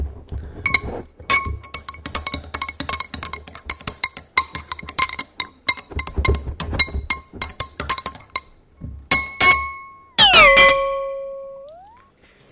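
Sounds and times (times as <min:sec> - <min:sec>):
ringing tone bending in pitch: 0:00.7 - 0:08.5, 0:09.1 - 0:12.0
spoon stirring briskly inside a glass: 0:00.7 - 0:08.5.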